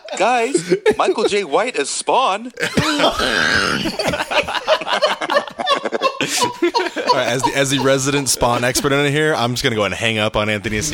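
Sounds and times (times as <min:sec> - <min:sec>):
laughter: 0:00.0 - 0:01.8, 0:02.6 - 0:09.4
speech: 0:00.1 - 0:05.6, 0:06.2 - 0:10.9
person in a violent coughing fit: 0:02.6 - 0:04.3.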